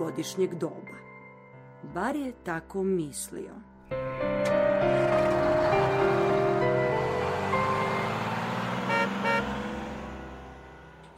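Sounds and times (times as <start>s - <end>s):
speech: 0.0s - 1.0s, 1.8s - 4.1s
bus engine pulling away from a stop: 3.9s - 11.1s.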